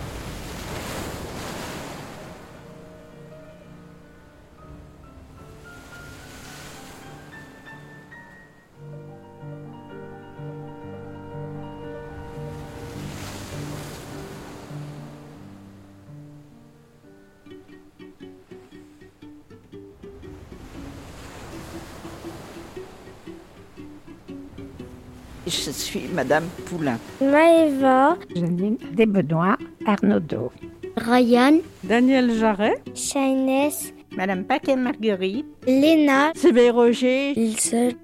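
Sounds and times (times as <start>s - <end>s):
soft rush of wind: 0.0s - 27.6s
sea waves rolling in and washing back: 0.0s - 38.0s
speech: 25.5s - 38.0s.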